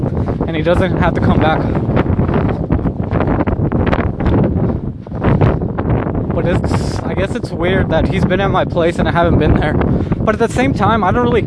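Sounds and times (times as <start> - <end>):
strong wind buffeting the microphone: 0.0 - 11.4
speech: 0.5 - 1.9, 6.4 - 11.4.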